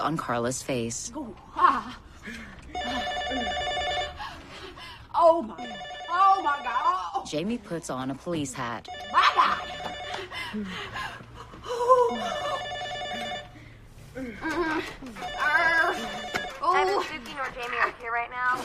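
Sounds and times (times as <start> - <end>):
speech: 0.0 - 2.4, 6.5 - 9.6, 10.5 - 11.1, 14.4 - 18.6
telephone ringing in long bursts: 2.7 - 4.4, 5.6 - 7.0, 8.8 - 10.4, 12.1 - 13.6, 15.1 - 17.3.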